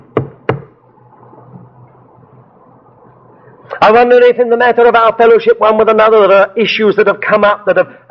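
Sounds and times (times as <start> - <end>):
faint low hum: 0.0 - 6.6
firm knocks on a door: 0.1 - 0.7
speech: 3.8 - 8.0.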